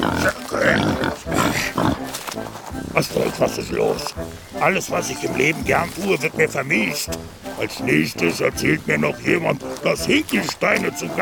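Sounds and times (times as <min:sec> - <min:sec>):
captured wild boar grunting and snorting: 0:00.0 - 0:04.5
speech: 0:03.0 - 0:11.2.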